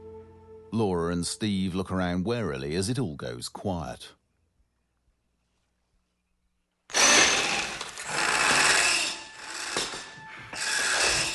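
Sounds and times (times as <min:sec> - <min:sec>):
speech: 0:00.8 - 0:04.2
power drill grinding through a window: 0:06.9 - 0:11.3.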